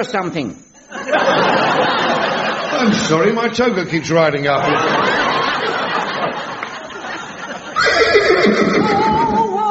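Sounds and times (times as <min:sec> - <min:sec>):
speech: 0:00.0 - 0:05.0
laughter: 0:00.8 - 0:03.4, 0:04.4 - 0:09.6
horse neighing: 0:07.8 - 0:09.5.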